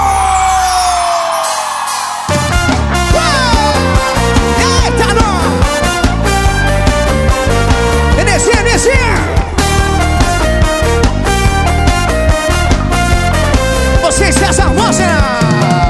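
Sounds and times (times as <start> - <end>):
live crowd whooping and cheering: 0.0 - 2.8
band playing a driving rhythmic song: 0.0 - 15.8.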